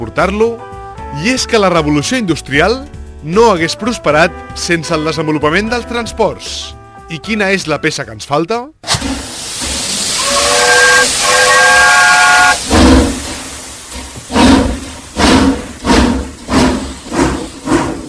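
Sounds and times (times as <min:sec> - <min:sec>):
speech: 0:00.0 - 0:09.0
steam locomotive hissing: 0:08.9 - 0:18.0
steam locomotive whistle: 0:09.9 - 0:13.2.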